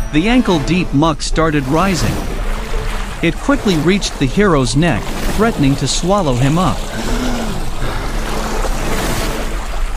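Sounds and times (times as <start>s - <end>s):
rushing water surging: 0.0s - 9.9s
speech: 0.1s - 2.3s, 3.2s - 7.2s.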